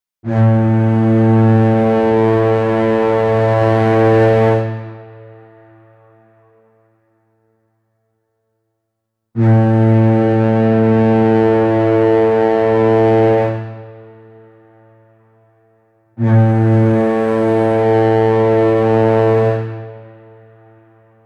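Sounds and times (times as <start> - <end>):
menacing medieval brass war horn blast: 0.2 - 6.6, 9.4 - 14.4, 16.2 - 21.2.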